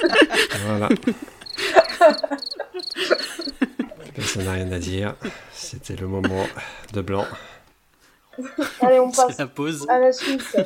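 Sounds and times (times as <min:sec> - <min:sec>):
speech: 0:00.0 - 0:03.4, 0:04.3 - 0:07.6, 0:08.4 - 0:10.6
laughter: 0:00.0 - 0:07.4
crickets chirping: 0:01.3 - 0:03.8.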